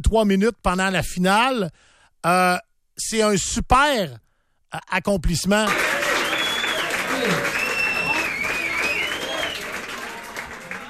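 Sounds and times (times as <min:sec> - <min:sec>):
speech: 0:00.0 - 0:06.0
large stadium crowd cheering and applauding after a player wins a final: 0:05.7 - 0:10.8.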